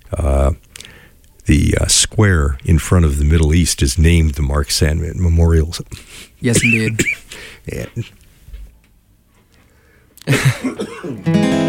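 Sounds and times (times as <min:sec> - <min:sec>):
speech: 0:01.5 - 0:08.2, 0:10.3 - 0:11.6
person coughing: 0:06.5 - 0:07.3, 0:10.3 - 0:11.2.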